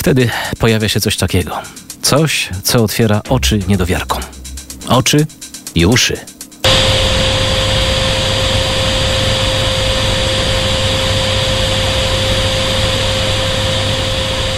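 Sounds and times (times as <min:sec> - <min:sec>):
speech: 0:00.0 - 0:06.3
vacuum cleaner running: 0:06.6 - 0:14.5.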